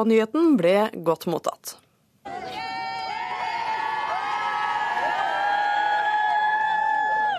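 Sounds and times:
speech: 0.0 - 1.8
large crowd cheering outside the gates of Buckingham Palace in London: 2.3 - 7.3.

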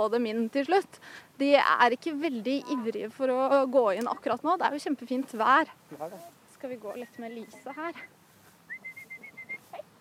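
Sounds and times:
speech: 0.0 - 8.2
person whistling high notes: 8.7 - 9.6.

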